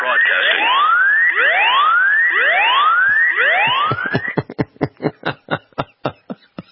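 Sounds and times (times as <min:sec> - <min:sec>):
phone safety app alarm siren: 0:00.0 - 0:04.5
laughter: 0:03.1 - 0:06.7.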